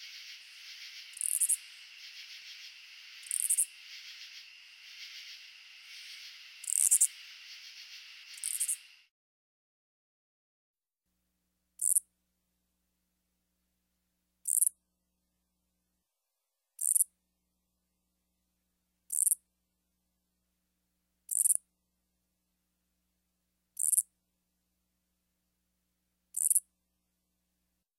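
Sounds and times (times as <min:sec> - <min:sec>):
Oblong-winged katydid Amblycorypha oblongifolia song of scratchy pulse bursts: 0:00.0 - 0:09.0
buzzing insect chorus: 0:00.0 - 0:09.1.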